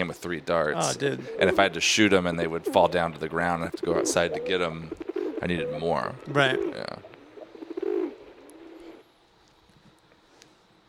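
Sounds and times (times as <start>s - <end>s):
speech: 0.0s - 7.1s
pigeon cooing: 0.8s - 1.8s, 2.6s - 9.0s.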